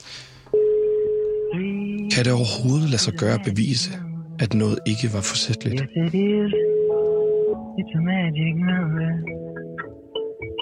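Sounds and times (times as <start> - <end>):
telephone ringing tone of an outgoing call: 0.5 - 2.2, 6.5 - 7.8
speech: 2.2 - 6.7, 7.8 - 9.5.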